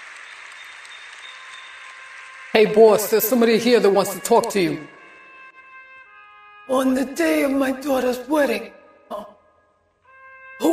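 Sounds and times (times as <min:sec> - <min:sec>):
audience applause: 0:00.0 - 0:05.0
speech: 0:02.6 - 0:05.0, 0:06.8 - 0:09.3.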